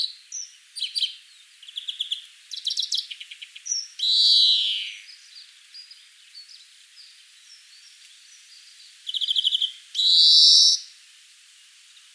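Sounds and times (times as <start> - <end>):
European greenfinch Chloris chloris twittering trills and buzzy wheeze: 0.0 - 11.0.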